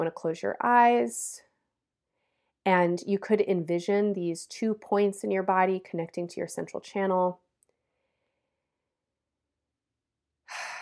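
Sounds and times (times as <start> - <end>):
speech: 0.0 - 1.5, 2.6 - 7.4
deep breath during a breathing and relaxation exercise: 7.8 - 8.7, 10.5 - 10.7.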